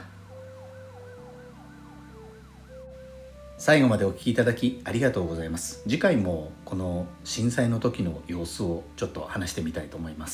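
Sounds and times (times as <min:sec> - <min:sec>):
emergency vehicle sirens wailing in rising-and-falling sweeps: 0:00.0 - 0:04.0
speech: 0:03.6 - 0:10.3.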